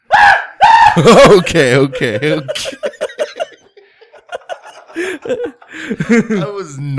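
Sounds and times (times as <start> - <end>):
piercing very loud human scream overloading the microphone: 0.0 - 1.1
speech: 1.0 - 3.0, 5.2 - 6.9
string of breathy laughs: 1.0 - 6.6.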